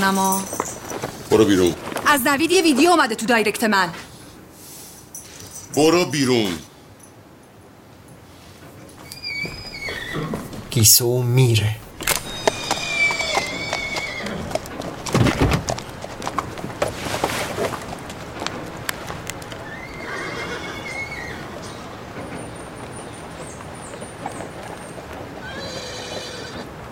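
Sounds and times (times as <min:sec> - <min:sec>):
speech: 0:00.0 - 0:00.6, 0:01.3 - 0:04.1, 0:05.8 - 0:06.7, 0:10.8 - 0:11.9
horse hooves clopping out of a stable: 0:00.0 - 0:03.0, 0:11.9 - 0:26.3
horse neighing as it carries a rider out of a stable: 0:09.0 - 0:10.7, 0:11.9 - 0:16.6, 0:19.6 - 0:21.6, 0:25.4 - 0:26.7.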